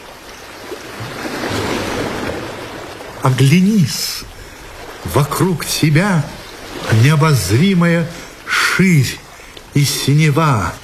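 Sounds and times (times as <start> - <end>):
sea waves: 0.0 - 10.8
speech: 3.2 - 4.4, 5.0 - 8.2, 8.8 - 9.2, 9.8 - 10.8.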